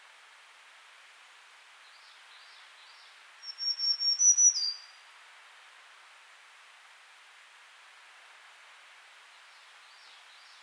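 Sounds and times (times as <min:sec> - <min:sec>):
faint background hiss: 0:00.0 - 0:10.6
Black-throated green warbler Setophaga virens song: 0:01.9 - 0:05.0.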